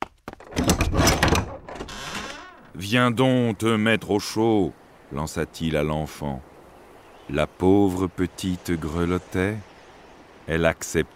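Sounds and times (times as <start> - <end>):
door of a big house opening: 0.4 - 2.8
speech: 2.8 - 6.5, 7.3 - 9.7, 10.5 - 11.1.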